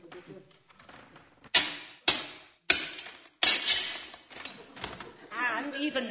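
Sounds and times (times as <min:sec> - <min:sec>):
glass windows being smashed: 0:01.5 - 0:04.9
glass fragments tinkling: 0:02.8 - 0:04.6
speech: 0:05.8 - 0:06.0.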